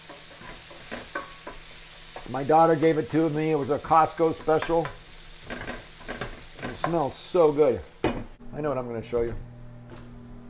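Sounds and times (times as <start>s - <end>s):
utensil scraping a pan: 0.0s - 3.1s, 4.2s - 7.1s
food frying in a nonstick pan on full heat: 0.0s - 8.4s
speech: 2.3s - 5.0s, 6.8s - 7.9s, 8.6s - 9.5s.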